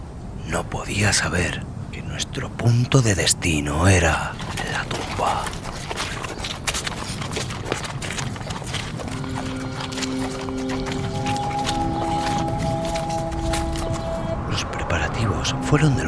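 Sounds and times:
speech: 0.5s - 5.7s, 15.5s - 16.0s
two horses clip-clopping on a ride through the desert: 4.2s - 14.5s
sustained musical tones: 9.1s - 16.0s.

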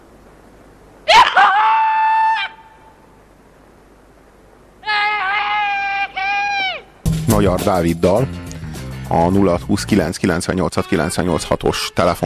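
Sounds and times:
person screaming at the top of their lungs: 1.1s - 2.6s, 4.8s - 6.9s
speech: 7.4s - 8.5s, 9.1s - 12.2s.

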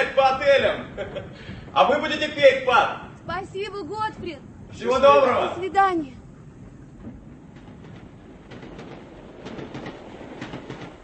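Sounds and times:
passenger train rumble pulling out of a station: 0.0s - 11.0s
speech: 0.3s - 6.2s
clickety-clack train wheel rhythm: 7.0s - 11.0s.

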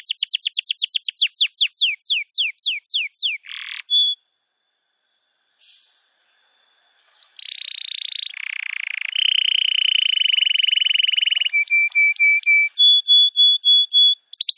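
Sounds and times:
canary singing long rapid trills as a trapping lure: 0.0s - 4.2s, 7.1s - 14.5s.

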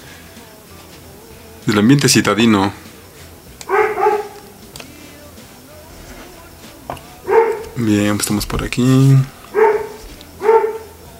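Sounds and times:
speech: 1.6s - 2.8s, 7.8s - 9.4s
neighbour's dog barking in a city setting: 3.7s - 4.5s, 7.2s - 7.8s, 9.4s - 11.0s.

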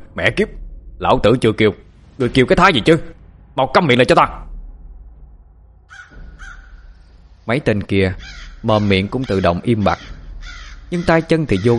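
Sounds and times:
low rumbling background: 0.0s - 11.7s
speech: 0.2s - 4.5s, 7.5s - 10.2s, 10.9s - 11.7s
wild crows cawing while flying: 5.9s - 7.2s, 8.1s - 11.7s.

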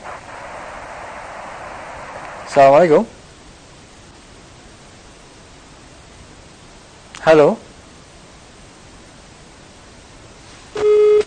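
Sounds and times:
speech: 2.5s - 3.2s, 7.2s - 7.6s
low-pitched telephone busy tone beep on a phone-in line: 10.8s - 11.2s.

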